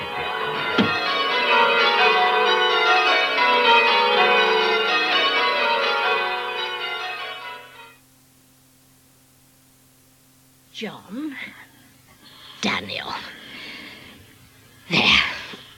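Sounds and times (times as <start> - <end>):
church bell rung by a man: 0.0 - 8.0.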